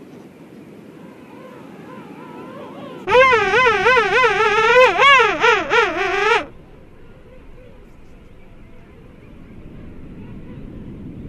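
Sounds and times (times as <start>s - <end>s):
king penguin trumpeting call: 3.1s - 6.5s.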